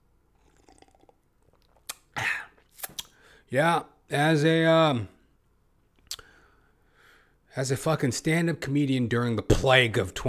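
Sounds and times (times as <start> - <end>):
person sipping water: 0.3 - 3.2
person gulping water: 0.4 - 2.6
speech: 3.5 - 5.2, 7.6 - 10.2.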